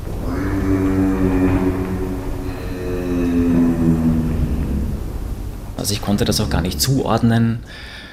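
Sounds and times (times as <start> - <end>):
giraffe low droning hum at night: 0.2 - 5.8
speech: 5.8 - 8.0.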